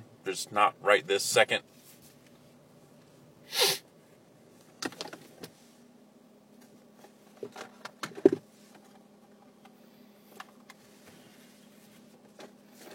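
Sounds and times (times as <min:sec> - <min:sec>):
low steady hum: 0:00.0 - 0:12.9
speech: 0:00.2 - 0:01.8
person sneezing: 0:03.5 - 0:03.8.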